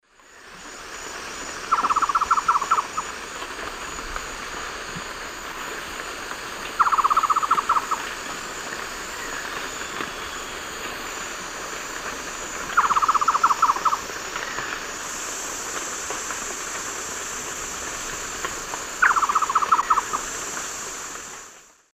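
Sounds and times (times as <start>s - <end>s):
Myrmothera campanisona call in the Eastern Lowlands of South America: 1.7s - 3.1s, 6.8s - 8.1s, 12.7s - 14.8s, 19.0s - 20.3s.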